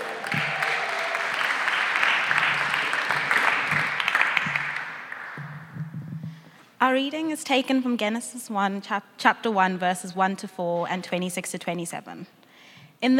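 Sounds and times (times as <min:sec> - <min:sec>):
crowd clapping: 0:00.0 - 0:05.8
speech: 0:06.8 - 0:12.4, 0:13.0 - 0:13.1.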